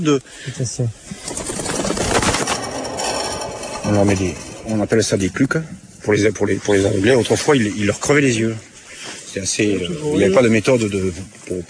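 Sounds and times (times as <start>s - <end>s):
speech: 0.0s - 1.5s, 3.9s - 8.7s, 9.3s - 11.6s
decoy pigeon wings flapping to lure a passing flock: 1.2s - 2.6s.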